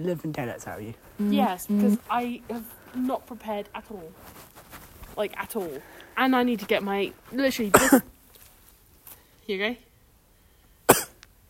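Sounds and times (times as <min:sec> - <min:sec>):
speech: 0:00.0 - 0:04.6, 0:05.2 - 0:08.1, 0:09.5 - 0:09.9
person with a sore throat coughing: 0:07.7 - 0:08.1, 0:10.9 - 0:11.2.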